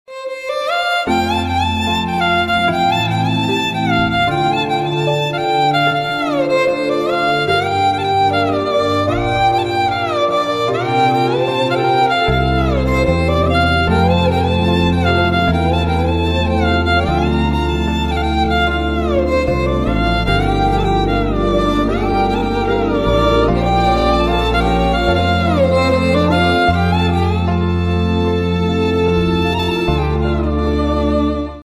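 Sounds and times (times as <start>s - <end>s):
Samsung violin: 0.1s - 31.6s.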